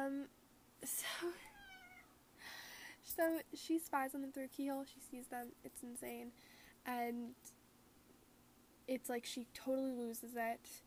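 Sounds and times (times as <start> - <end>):
speech: 0.0 - 1.5, 3.2 - 7.6, 8.9 - 10.8
house cat meowing: 1.4 - 2.1.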